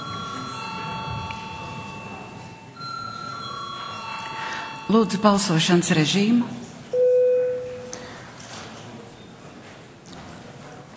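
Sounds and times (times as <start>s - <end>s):
electric parliamentary voting call bell ringing: 0.0s - 5.6s
faint murmur: 0.0s - 10.9s
speech: 4.9s - 6.6s.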